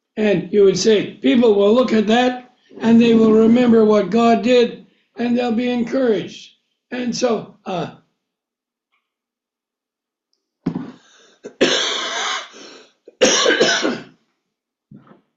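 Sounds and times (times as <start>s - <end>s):
speech: 0.2s - 8.0s
harsh coughing: 10.7s - 14.2s.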